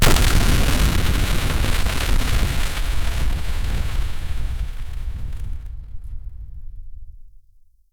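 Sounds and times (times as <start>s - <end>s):
steam pipe rupture explosion: 0.0s - 6.0s.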